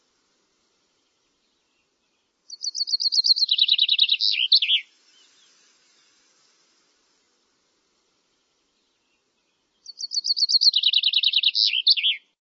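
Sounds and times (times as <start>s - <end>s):
bird calling: 2.5s - 5.3s, 9.8s - 12.3s.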